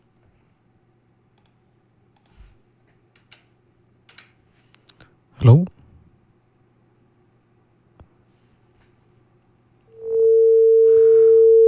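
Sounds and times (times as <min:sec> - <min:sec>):
faint low hum: 0:00.0 - 0:11.6
speech: 0:05.4 - 0:05.7
telephone dial tone after a caller's line cuts off: 0:10.0 - 0:11.6.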